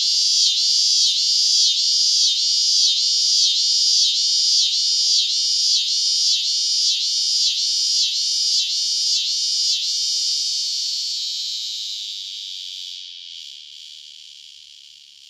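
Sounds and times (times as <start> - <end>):
scissor-grinder cicada song in North America: 0.0 - 3.0, 3.9 - 15.2.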